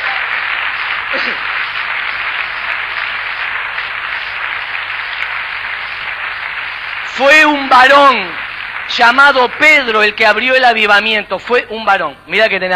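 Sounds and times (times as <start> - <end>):
large crowd applauding: 0.0 - 11.7
speech: 1.1 - 1.5, 7.2 - 12.7
person's voice: 7.1 - 12.7.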